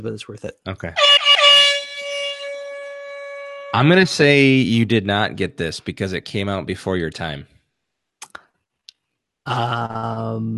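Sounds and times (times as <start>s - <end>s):
speech: 0.0s - 1.3s, 3.8s - 7.5s, 9.5s - 10.5s
loud brassy air horn blast: 1.0s - 4.6s.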